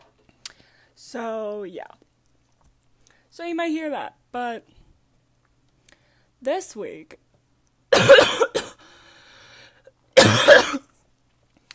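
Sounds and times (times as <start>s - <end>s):
speech: 1.1s - 2.1s, 3.4s - 4.8s, 6.4s - 7.2s
person with an ongoing cough from illness coughing: 7.9s - 8.8s, 10.2s - 10.9s
faint wheezy breath: 8.8s - 9.9s.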